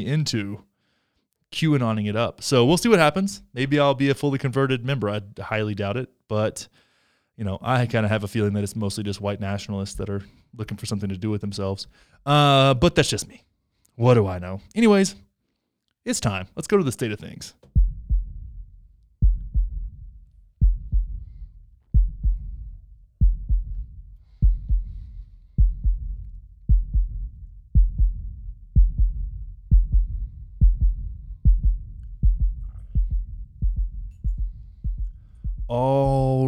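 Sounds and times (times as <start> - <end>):
speech: 0.0 - 0.7, 1.5 - 6.8, 7.4 - 15.2, 16.0 - 17.8, 35.7 - 36.4
heartbeat sound effect thumping: 17.6 - 36.4.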